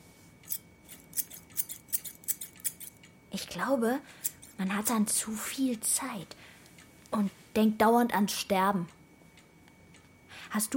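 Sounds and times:
rusty scissors snipping: 0:00.4 - 0:03.1, 0:04.2 - 0:05.1
speech: 0:03.4 - 0:06.4, 0:07.1 - 0:09.0, 0:10.5 - 0:10.7.

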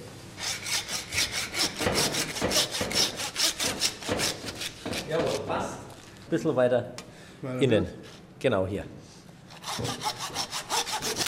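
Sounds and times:
hand saw cutting through pork ribs: 0:00.4 - 0:05.6, 0:09.5 - 0:11.2
speech: 0:06.3 - 0:09.0.

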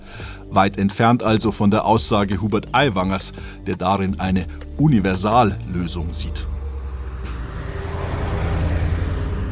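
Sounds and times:
speech: 0:00.5 - 0:06.5
heavy truck delivering hydrogen trailers rumbling: 0:05.2 - 0:09.5
road noise: 0:05.2 - 0:09.5.

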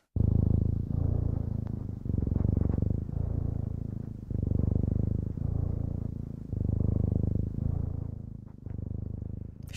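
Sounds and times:
cat purring deeply: 0:00.0 - 0:09.7.

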